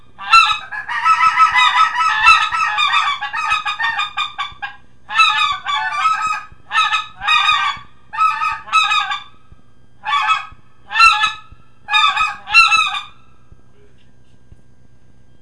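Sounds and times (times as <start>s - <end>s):
greater white-fronted goose laughing yelps: 0.2s - 9.3s, 10.0s - 13.2s.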